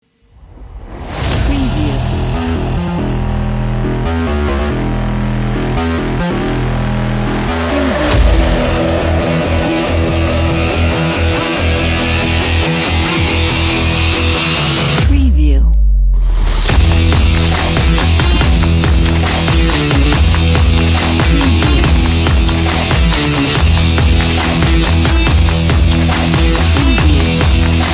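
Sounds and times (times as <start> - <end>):
aggressive big beat sport music: 1.5 - 15.3, 16.2 - 27.9.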